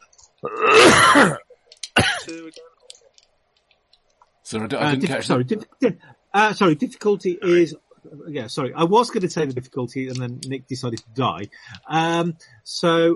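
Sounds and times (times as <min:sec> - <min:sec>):
speech: 0:00.4 - 0:01.4, 0:02.3 - 0:02.7, 0:04.5 - 0:13.1
person clearing throat: 0:00.5 - 0:01.4, 0:02.0 - 0:02.5
person coughing: 0:00.5 - 0:01.4, 0:02.0 - 0:02.5.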